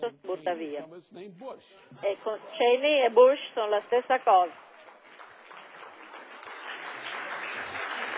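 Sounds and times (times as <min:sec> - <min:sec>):
speech: 0:00.4 - 0:04.7
audience clapping: 0:04.2 - 0:08.1.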